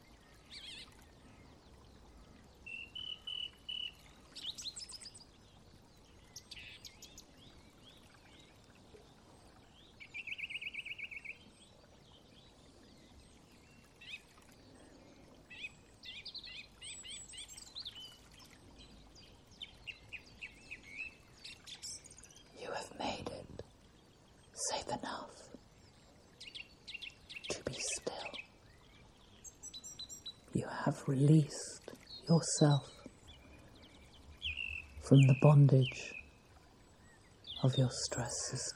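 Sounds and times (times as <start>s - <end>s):
birds singing and chirping outdoors: 0.0s - 23.8s, 24.4s - 38.7s
soft steady wash, possibly gently moving water: 0.0s - 38.7s
speech: 31.1s - 31.6s, 32.3s - 32.9s, 35.1s - 36.2s, 37.6s - 38.7s.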